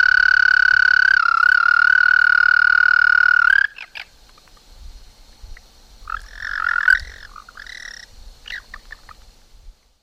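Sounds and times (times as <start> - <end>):
American toad Anaxyrus americanus trilling: 0.0 - 4.5, 6.0 - 9.2.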